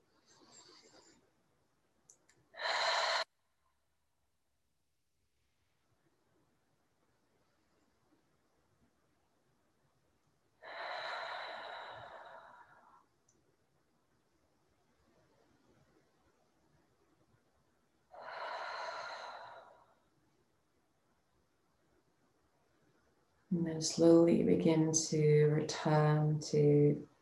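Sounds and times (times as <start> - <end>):
sharp nasal inhale: 2.6 - 3.3, 10.6 - 13.0, 18.2 - 20.0
speech: 23.6 - 27.1.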